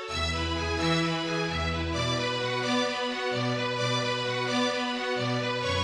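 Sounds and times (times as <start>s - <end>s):
quartet playing: 0.1s - 5.8s.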